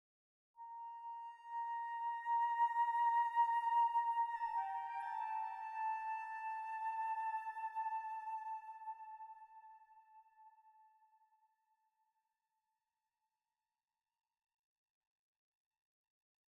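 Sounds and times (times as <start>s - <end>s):
flute playing: 0.6s - 10.4s.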